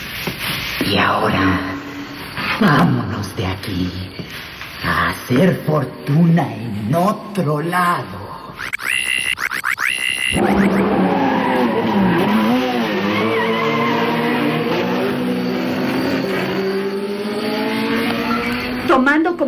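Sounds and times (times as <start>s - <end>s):
speech: 0.9s - 1.8s, 2.6s - 8.8s, 19.1s - 19.4s
race car tires squealing: 8.9s - 19.0s
race car speeding away: 10.3s - 18.9s.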